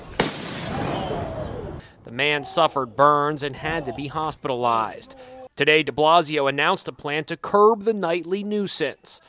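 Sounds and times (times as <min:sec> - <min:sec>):
firework bang outdoors: 0:00.0 - 0:01.5
speech: 0:02.1 - 0:09.2.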